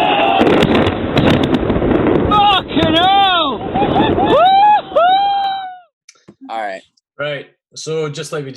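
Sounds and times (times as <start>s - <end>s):
bombs dropping and exploding: 0.2s - 4.8s
speech: 7.8s - 8.5s.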